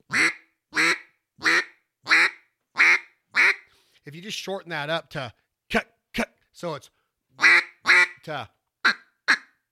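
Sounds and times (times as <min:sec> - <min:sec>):
duck call blown in raspy quacks: 0:00.1 - 0:03.7, 0:07.4 - 0:09.6
speech: 0:04.0 - 0:07.6, 0:08.2 - 0:09.0.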